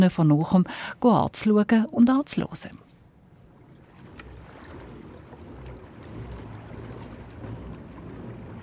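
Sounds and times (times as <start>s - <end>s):
speech: 0.0s - 2.9s
water churning and lapping around a pedal boat moving across a lake: 3.0s - 8.6s.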